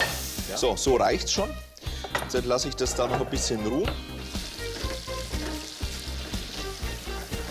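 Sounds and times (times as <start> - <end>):
butter sizzling and crackling in a hot frying pan: 0.0 - 0.7, 4.1 - 7.4
speech: 0.5 - 1.7, 2.3 - 4.2.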